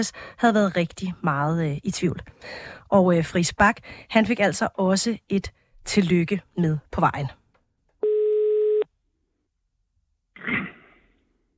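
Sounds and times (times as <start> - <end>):
speech: 0.0 - 7.4
telephone ringing tone on an outgoing call from a radio studio: 8.0 - 8.9.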